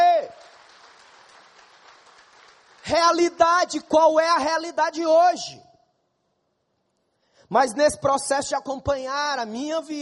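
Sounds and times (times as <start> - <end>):
audience applauding: 0.0 - 3.4
speech: 2.9 - 5.7, 7.5 - 10.0.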